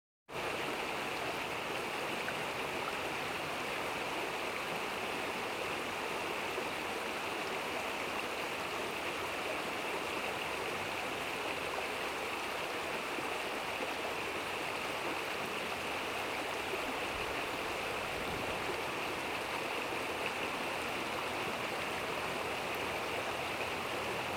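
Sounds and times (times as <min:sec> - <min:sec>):
rushing stream in the countryside: 0:00.3 - 0:24.3.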